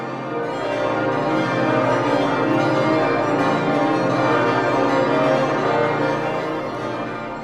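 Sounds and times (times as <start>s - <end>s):
full peal of twenty tuned church bells: 0.0s - 7.4s.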